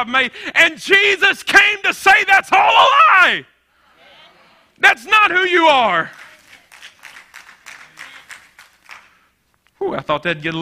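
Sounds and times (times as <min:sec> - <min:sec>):
speech: 0:00.0 - 0:03.5, 0:04.8 - 0:06.2, 0:09.8 - 0:10.6
scattered audience applause: 0:06.1 - 0:09.3.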